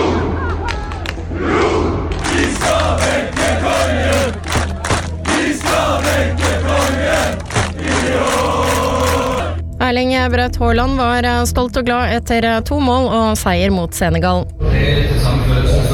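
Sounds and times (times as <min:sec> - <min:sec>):
large crowd of football fans shouting and chanting in the streets at night: 0:00.0 - 0:09.6
thumps and bangs: 0:04.4 - 0:08.6
speech: 0:10.2 - 0:15.8.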